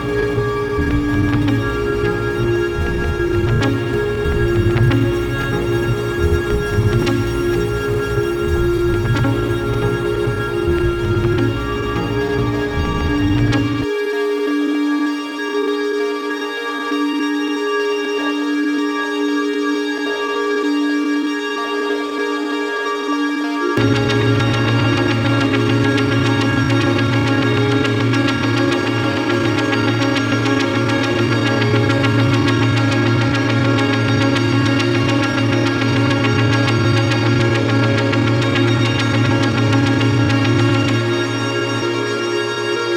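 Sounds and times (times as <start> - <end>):
low synthesised droning bed: 0.0 - 15.0, 23.8 - 42.9
bright sustained synthesised lines: 0.0 - 42.9.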